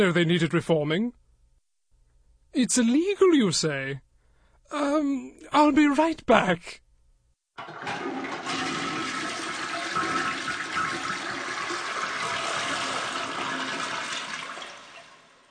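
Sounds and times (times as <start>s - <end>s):
speech: 0.0s - 1.2s, 2.5s - 4.1s, 4.7s - 6.8s, 7.6s - 8.6s
toilet flushing: 7.6s - 15.4s.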